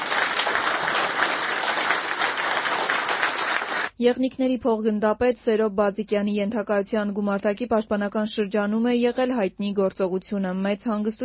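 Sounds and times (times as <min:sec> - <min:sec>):
audience applause at a ceremony honoring a military commander: 0:00.0 - 0:03.9
speech: 0:04.0 - 0:11.2.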